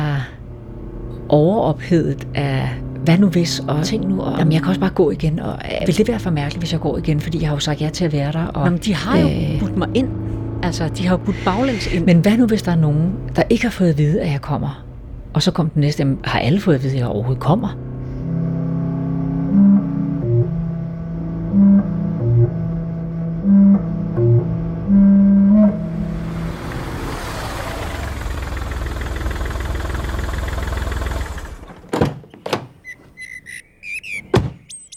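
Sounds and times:
car engine humming while parking: 0.0 - 31.9
speech: 1.3 - 14.8, 15.4 - 17.9
clicks and clunks of the car being shut down: 31.6 - 33.2
car parking beeps: 32.8 - 34.9.

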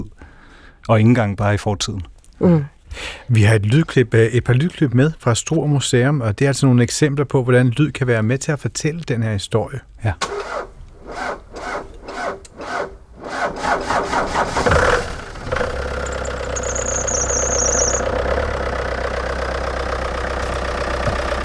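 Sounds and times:
speech: 0.8 - 11.3
diesel engine struggling to start: 10.2 - 21.4.

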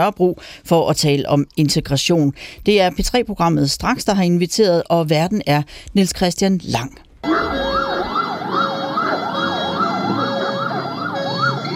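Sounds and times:
speech: 0.0 - 7.6
police car siren wailing as the car leaves a bank: 7.2 - 11.7.

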